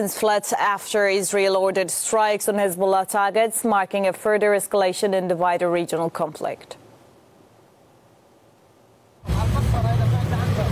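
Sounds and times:
speech: 0:00.0 - 0:06.8
engine drone of heavy city traffic in Beirut: 0:09.2 - 0:10.7
street noise in southern suburbs of Beirut: 0:09.2 - 0:10.7.

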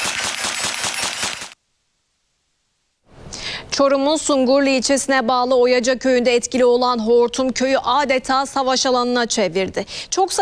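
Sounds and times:
compact machine gun firing a rapid burst: 0:00.0 - 0:01.6
speech: 0:03.8 - 0:10.4.

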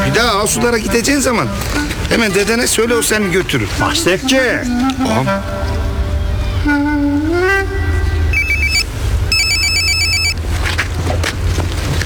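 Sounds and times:
low rumble: 0:00.0 - 0:12.0
speech: 0:00.2 - 0:05.8
telephone ringing with trilling electronic tones: 0:08.3 - 0:10.4.

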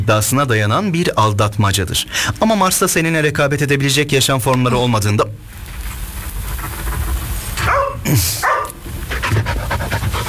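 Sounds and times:
speech: 0:00.0 - 0:05.5, 0:08.1 - 0:08.5
rustling: 0:04.5 - 0:10.2
panting: 0:06.5 - 0:10.2
dog barking: 0:07.6 - 0:09.5.

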